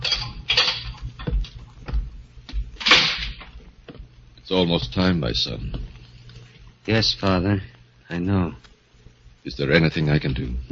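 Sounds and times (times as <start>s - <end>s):
footsteps on a hard floor in a death house corridor: 1.0s - 2.8s, 3.5s - 4.2s
speech: 4.5s - 5.9s, 6.9s - 8.7s, 9.4s - 10.7s.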